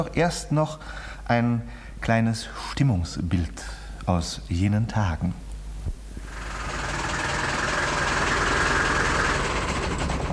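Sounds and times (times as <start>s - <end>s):
speech: 0.0s - 5.4s
heavy lorry engine idling on a street: 6.2s - 10.3s.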